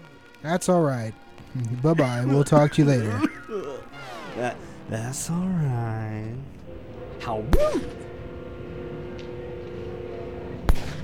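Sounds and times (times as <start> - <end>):
speech: 0.4 - 3.7, 4.4 - 6.6, 7.2 - 8.0
steady low rumbling noise: 0.4 - 11.0
laughter: 0.5 - 10.5
gunshot: 10.7 - 11.0.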